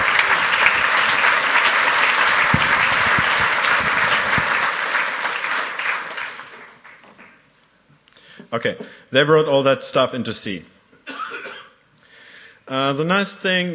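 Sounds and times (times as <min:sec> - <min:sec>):
audience applause: 0:00.0 - 0:07.4
speech: 0:08.6 - 0:10.8, 0:12.7 - 0:13.7.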